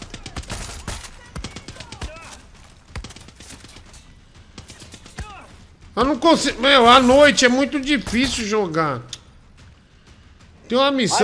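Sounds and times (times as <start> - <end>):
video game gunfire in quick bursts: 0.0 - 11.2
speech: 6.0 - 9.1, 10.7 - 11.2.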